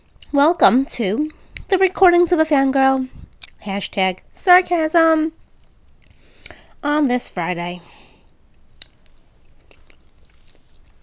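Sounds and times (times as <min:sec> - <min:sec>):
speech: 0:00.3 - 0:05.4, 0:06.8 - 0:07.9
quiet chewing of pineapple: 0:05.4 - 0:06.7, 0:08.5 - 0:11.0.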